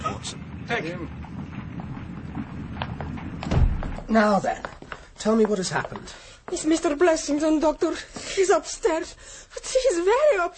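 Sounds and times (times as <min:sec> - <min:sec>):
low rumble: 0:00.0 - 0:04.6
clip-clopping hooves of an arriving horse-drawn carriage: 0:00.0 - 0:08.6
speech: 0:00.7 - 0:01.2, 0:04.1 - 0:10.5.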